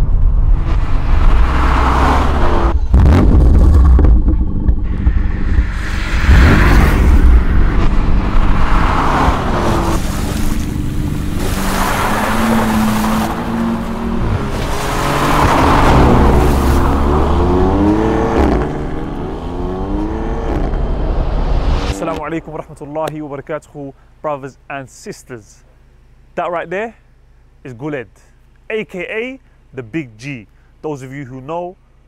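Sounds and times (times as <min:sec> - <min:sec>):
car engine revving: 0:00.0 - 0:23.5
speech: 0:22.3 - 0:25.7, 0:26.4 - 0:27.0, 0:27.6 - 0:31.8.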